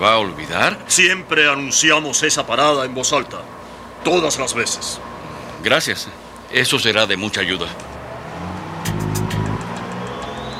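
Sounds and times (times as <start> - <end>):
speech: 0.0 - 7.9
bus engine rumble pulling away: 7.6 - 10.5.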